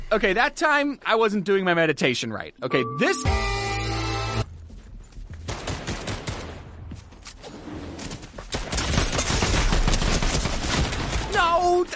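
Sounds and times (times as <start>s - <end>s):
speech: 0.2s - 3.6s
gunfire in a video game: 5.5s - 6.9s, 7.5s - 11.7s.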